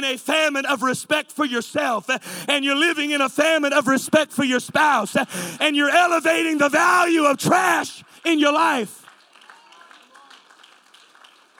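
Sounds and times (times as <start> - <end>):
speech: 0.0 - 9.0
hesitant audience clapping during a sermon: 6.4 - 11.5.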